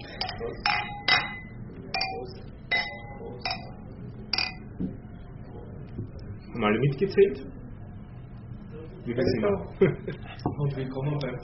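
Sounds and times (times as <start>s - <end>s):
glasses clinking in a toast: 0.0s - 4.7s
faint murmur of a room: 0.0s - 11.4s
speech: 6.6s - 7.6s, 9.0s - 11.4s.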